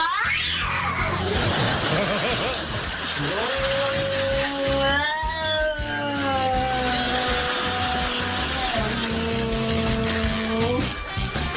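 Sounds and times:
black cat yowling at its mirror reflection: 0.0s - 1.2s, 3.8s - 10.8s
laughter: 1.3s - 3.7s.

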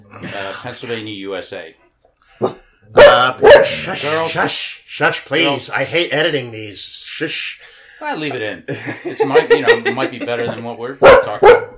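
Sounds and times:
speech: 0.1s - 1.8s, 2.4s - 11.7s
dogs barking at a person outside: 2.4s - 4.2s, 11.0s - 11.7s
laughter: 8.4s - 11.0s.

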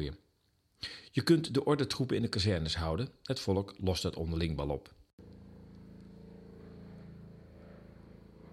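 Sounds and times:
speech: 0.0s - 0.2s, 0.8s - 5.4s
police helicopter circling overhead: 5.2s - 8.5s.

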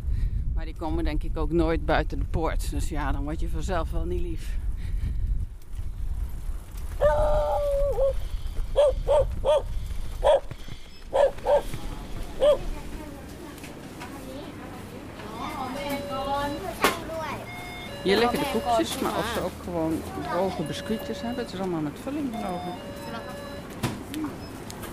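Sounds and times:
steady outdoor rumble: 0.0s - 22.4s
speech: 0.6s - 5.2s, 18.0s - 23.1s
dogs barking: 8.8s - 10.5s, 11.1s - 12.7s.

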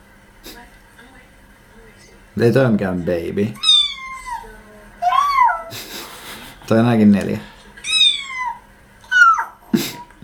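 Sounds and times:
speech: 2.4s - 3.6s, 6.7s - 7.5s
cat giving drawn-out wailing meows: 3.6s - 5.8s, 7.8s - 9.6s
laughter: 4.5s - 7.9s, 9.5s - 10.2s.

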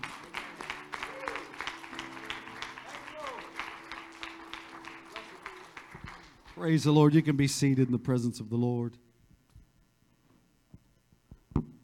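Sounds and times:
large audience clapping hands in praise: 0.0s - 8.0s
speech: 6.6s - 9.1s.

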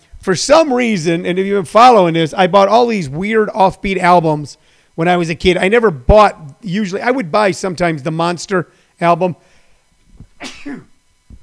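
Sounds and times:
speech: 0.3s - 9.5s, 10.4s - 10.9s
person sneezing: 10.4s - 10.9s.

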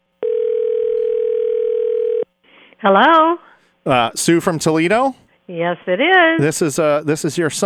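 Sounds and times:
telephone line tone: 0.2s - 2.3s
speech: 2.8s - 7.6s.

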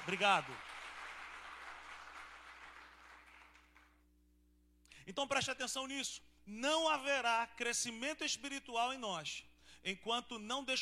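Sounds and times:
speech: 0.0s - 0.7s, 5.1s - 10.7s
crowd applauding during a sermon: 0.0s - 3.9s
faint hum: 0.0s - 10.7s.

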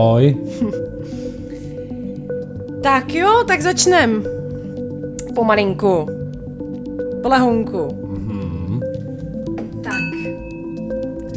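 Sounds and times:
speech: 0.0s - 0.9s, 2.8s - 4.4s, 5.4s - 6.2s, 7.2s - 8.0s
dense steady musical background: 0.0s - 11.3s
struck drinking glass ringing with clear sustained tones: 9.8s - 11.3s.

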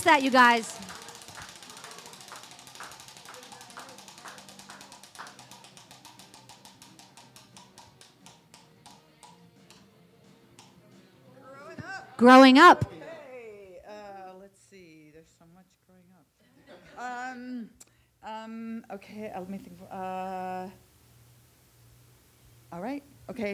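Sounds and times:
speech: 0.0s - 0.9s, 12.2s - 13.0s, 17.4s - 20.8s, 22.7s - 23.5s
game show prize wheel spinning and clicking: 0.0s - 8.3s.

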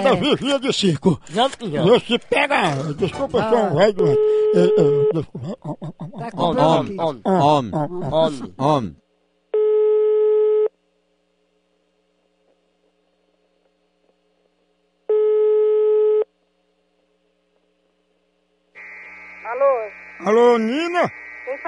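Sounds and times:
laughter: 0.0s - 8.7s
speech: 0.0s - 9.0s, 19.5s - 21.6s
electronic telephone ringing tone: 4.0s - 5.2s, 9.6s - 10.7s, 15.1s - 16.3s.

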